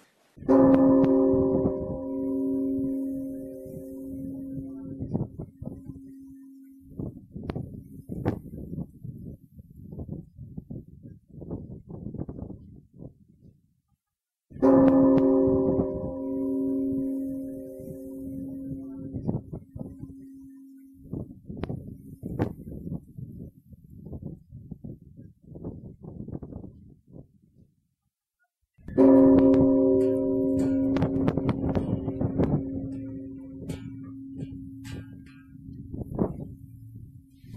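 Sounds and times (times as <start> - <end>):
deep temple bell struck at night: 0.4 - 7.2, 14.6 - 21.0, 28.9 - 37.5.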